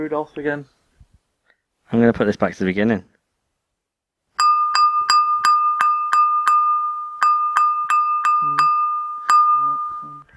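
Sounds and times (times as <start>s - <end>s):
speech: 0.0s - 0.8s, 1.9s - 3.1s
carol melody on bright ringing chimes: 4.4s - 10.3s
faint voices murmuring: 8.4s - 8.7s.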